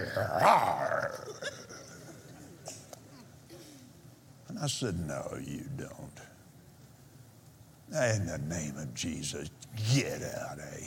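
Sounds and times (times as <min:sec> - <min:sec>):
person voicing a short rough growl: 0:00.0 - 0:01.4
speech: 0:00.2 - 0:01.5, 0:04.5 - 0:06.3, 0:07.9 - 0:10.8.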